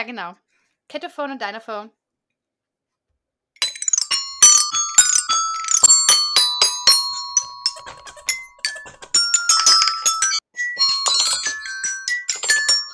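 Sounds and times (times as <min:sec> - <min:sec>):
speech: 0:00.0 - 0:02.0
xylophone playing a quick bright melody as an outro: 0:03.6 - 0:12.9.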